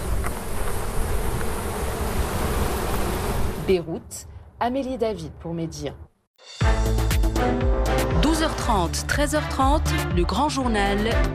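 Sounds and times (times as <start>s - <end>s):
many honeybees buzzing around hives: 0.0s - 3.8s
speech: 3.7s - 11.3s.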